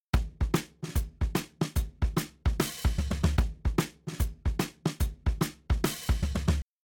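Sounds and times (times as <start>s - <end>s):
shuffle drum beat with snare and hi-hat: 0.0s - 6.6s.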